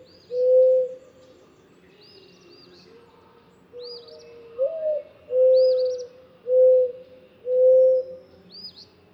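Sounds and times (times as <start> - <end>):
Mourning Dove song of mournful low coos: 0.0 - 1.0, 4.5 - 8.2.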